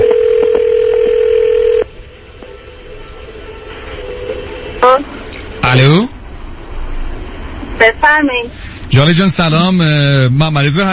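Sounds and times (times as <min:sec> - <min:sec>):
telephone ringing tone as a call is placed: 0:00.0 - 0:01.9
speech: 0:05.7 - 0:06.1, 0:08.1 - 0:10.9.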